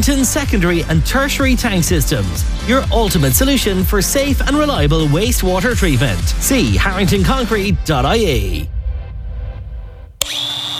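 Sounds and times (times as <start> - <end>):
speech: 0.0 - 8.7
low rumbling noise: 2.4 - 10.2
power tool, angle grinder or multi-tool, running with high-pitched whine: 10.2 - 10.7.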